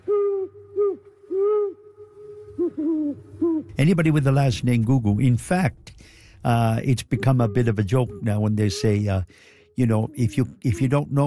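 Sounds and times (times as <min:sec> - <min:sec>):
owl hooting: 0:00.0 - 0:04.0, 0:06.5 - 0:11.2
speech: 0:03.7 - 0:11.2.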